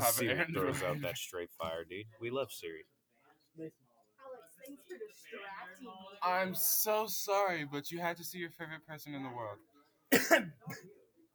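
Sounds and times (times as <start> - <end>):
speech: 0.0 - 3.0, 3.6 - 3.8, 4.6 - 11.0
loud harsh cough: 10.1 - 10.9.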